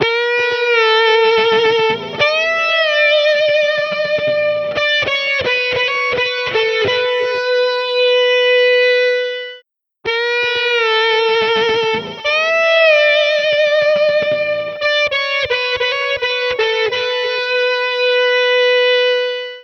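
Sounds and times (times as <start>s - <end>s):
lead guitar: 0.0s - 19.6s.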